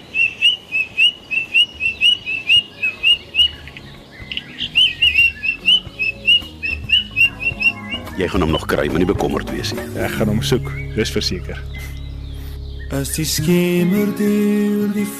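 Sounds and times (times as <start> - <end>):
white-throated robin-chat singing whistled notes: 0.0 - 14.2
speech: 8.2 - 11.9, 12.9 - 15.1.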